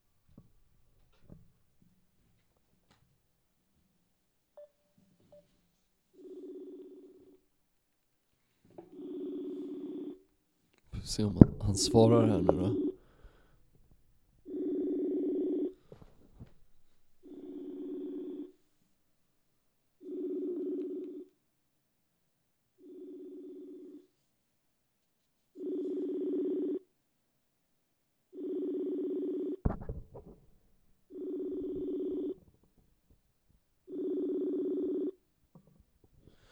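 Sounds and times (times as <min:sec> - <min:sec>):
telephone ringback tone: 0:04.6 - 0:05.5, 0:06.2 - 0:07.4, 0:08.9 - 0:10.2, 0:11.0 - 0:13.0, 0:14.5 - 0:16.0, 0:17.2 - 0:18.5, 0:20.0 - 0:21.3, 0:25.6 - 0:26.8, 0:28.4 - 0:29.9, 0:31.1 - 0:32.4, 0:33.9 - 0:35.2
speech: 0:11.1 - 0:12.8.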